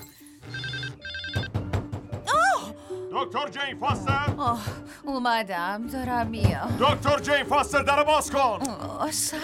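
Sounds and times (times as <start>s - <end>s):
telephone ringing with bright electronic tone: 0.4s - 1.7s
speech: 3.2s - 9.4s.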